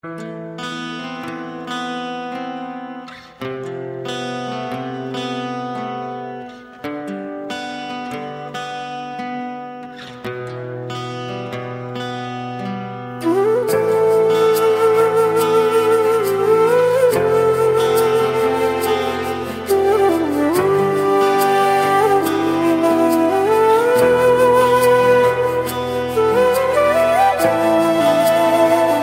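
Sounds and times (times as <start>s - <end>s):
guitar: 0.0s - 29.0s
flute: 13.0s - 29.0s.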